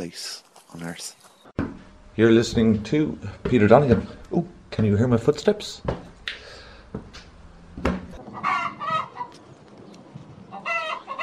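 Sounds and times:
speech: 0.0 - 1.2, 2.2 - 6.4
hen clucking while laying an egg: 8.2 - 9.4, 10.5 - 11.2.

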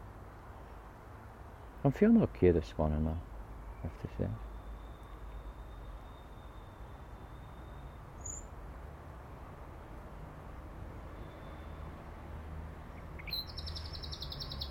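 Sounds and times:
speech: 1.8 - 4.5
small bird chirping and singing in grass: 3.7 - 8.5, 13.0 - 14.6.

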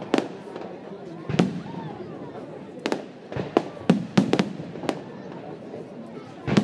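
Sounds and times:
fireworks banging and crackling: 0.0 - 6.6
low murmur of voices: 0.0 - 6.6.

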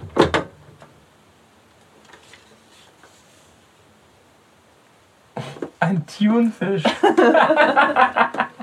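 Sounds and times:
paper note pushed through a door gap, scraping rustles: 2.0 - 3.6
speech: 5.9 - 8.3
laughter: 6.8 - 8.6.

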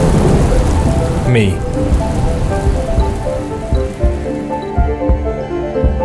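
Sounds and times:
heavy rain drumming on a surface: 0.0 - 5.2
speech: 1.3 - 1.9.

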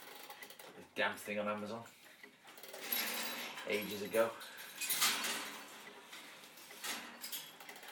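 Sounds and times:
old alarm clock being wound up with metallic ratcheting clicks: 0.0 - 0.7, 2.6 - 7.9
speech: 0.8 - 2.0, 3.6 - 4.5.

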